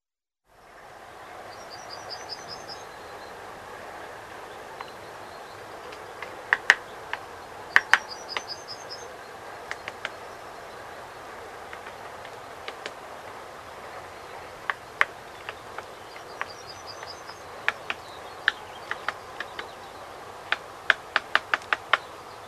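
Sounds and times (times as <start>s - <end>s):
great spotted woodpecker kik calls: 5.8s - 10.3s, 11.6s - 13.1s, 14.4s - 22.4s.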